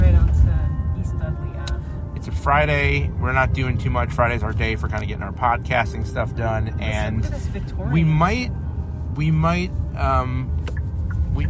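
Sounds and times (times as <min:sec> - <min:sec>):
car driving along a city street: 0:00.0 - 0:11.4
speech: 0:02.4 - 0:08.6, 0:09.2 - 0:10.6.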